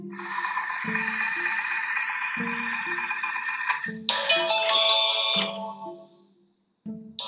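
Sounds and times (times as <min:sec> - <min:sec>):
Thermomix TM6 kitchen appliance electronic chime: 0:00.2 - 0:05.8.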